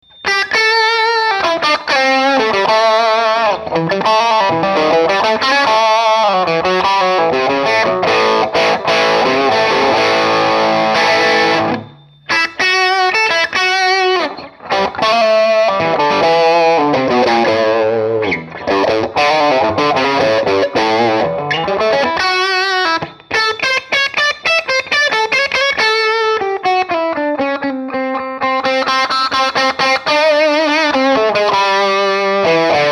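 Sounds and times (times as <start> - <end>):
dirty electric guitar tone from Lollar wide range bridge pickup: 0.0 - 32.9.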